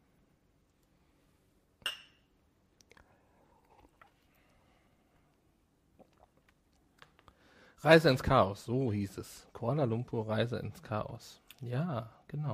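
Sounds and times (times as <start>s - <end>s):
two glasses of drink clinking in a toast: 1.8s - 2.3s
speech: 7.8s - 12.5s.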